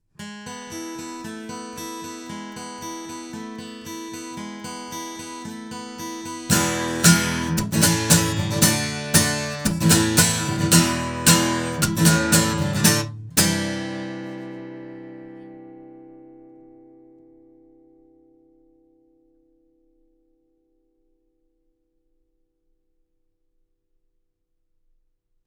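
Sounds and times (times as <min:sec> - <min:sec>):
guitar recorded with omni microphones: 0:00.2 - 0:19.3.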